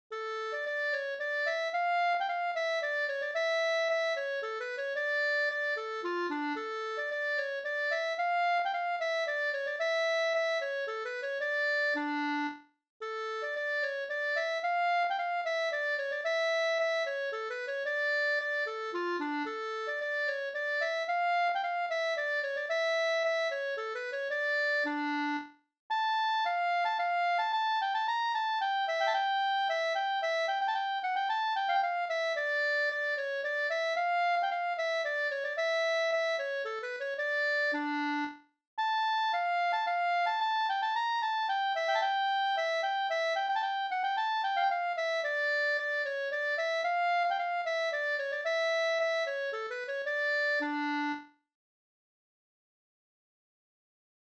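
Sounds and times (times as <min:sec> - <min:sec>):
polska music: 0:00.2 - 0:12.6, 0:13.2 - 0:51.3.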